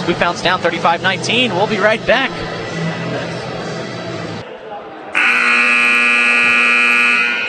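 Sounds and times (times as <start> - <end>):
arena crowd murmuring: 0.0 - 6.7
speech: 0.1 - 3.3
basketball game buzzer: 5.2 - 7.4.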